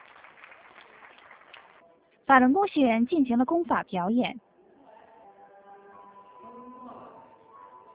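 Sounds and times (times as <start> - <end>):
audience applause with many hands clapping: 0.0 - 1.8
speech: 2.3 - 4.5.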